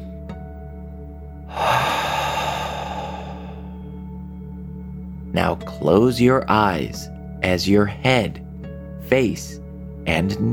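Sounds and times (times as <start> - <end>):
deep breath out through the mouth during a guided relaxation exercise: 1.5 - 3.9
speech: 5.4 - 8.4, 9.1 - 10.5.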